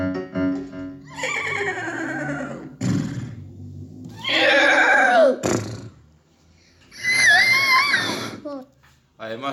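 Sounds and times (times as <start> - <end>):
horse whinnying: 1.1 - 3.4, 4.1 - 6.0, 6.9 - 8.5.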